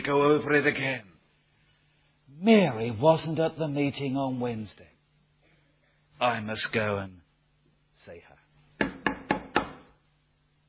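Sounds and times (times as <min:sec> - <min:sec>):
speech: 0:00.0 - 0:01.2, 0:02.3 - 0:04.9, 0:06.2 - 0:07.2, 0:08.0 - 0:08.3
firm knocks on a wooden door: 0:08.8 - 0:09.9.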